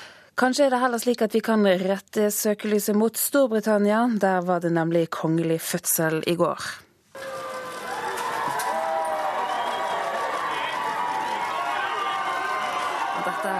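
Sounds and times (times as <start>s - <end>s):
speech: 0.4s - 6.8s
large outdoor crowd cheering and shouting outside a hospital: 7.2s - 13.5s.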